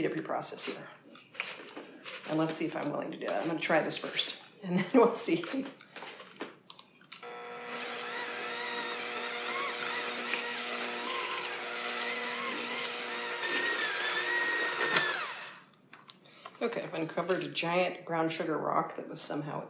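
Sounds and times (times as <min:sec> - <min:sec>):
speech: 0:00.0 - 0:01.5, 0:02.3 - 0:06.2, 0:16.6 - 0:19.6
hand mixer beaters breaking up cold butter: 0:07.2 - 0:15.7.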